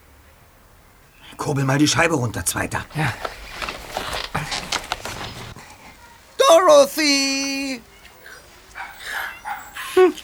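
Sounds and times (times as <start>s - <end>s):
rustling: 1.3s - 10.2s
speech: 1.4s - 3.4s, 6.9s - 7.9s
miniature Chihuahua yapping by the garbage bins: 7.8s - 10.2s.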